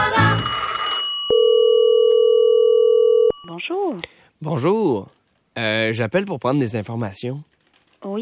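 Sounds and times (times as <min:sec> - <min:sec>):
telephone bell ringing: 0:00.2 - 0:03.5
speech: 0:03.9 - 0:08.1.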